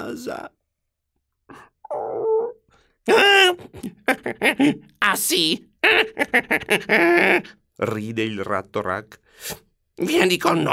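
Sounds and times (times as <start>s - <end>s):
speech: 0.0s - 0.6s, 3.1s - 10.7s
dog whimpering: 1.5s - 2.7s.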